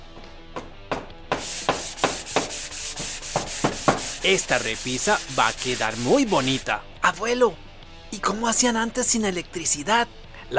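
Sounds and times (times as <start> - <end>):
hand sanding a wooden storeroom door: 1.3 - 6.7
speech: 4.2 - 10.5.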